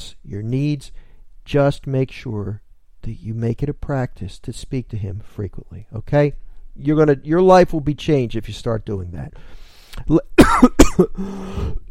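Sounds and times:
speech: 0.3 - 11.8
brief breaths: 1.0 - 1.3, 9.4 - 10.1, 11.2 - 11.8
coughing fit of sharp loud bursts: 10.4 - 11.8
rough throat clearing: 10.4 - 11.8.

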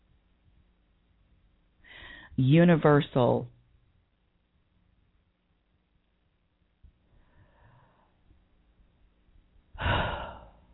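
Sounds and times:
deep breath: 1.8 - 2.4, 7.1 - 8.3, 9.8 - 10.7
speech: 2.4 - 3.6.

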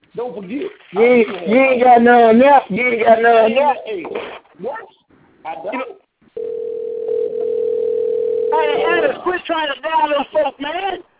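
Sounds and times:
speech: 0.2 - 6.0, 8.5 - 11.1
telephone dial tone: 6.4 - 8.6.

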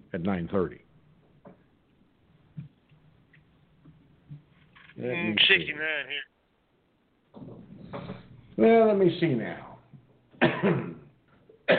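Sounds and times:
speech: 0.1 - 0.9, 5.0 - 6.3, 8.6 - 9.7, 10.6 - 10.9
coughing from a tickle in the throat: 10.4 - 11.7.

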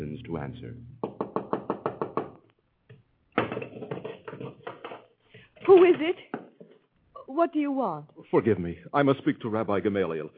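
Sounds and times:
speech: 0.3 - 1.0, 5.7 - 6.3, 7.4 - 10.3
hurried knocking on a door: 1.0 - 2.4.

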